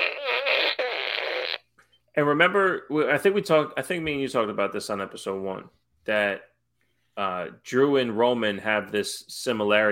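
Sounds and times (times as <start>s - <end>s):
buzzy wavering fart sound effect: 0.0s - 1.7s
speech: 2.2s - 6.5s, 7.2s - 9.8s.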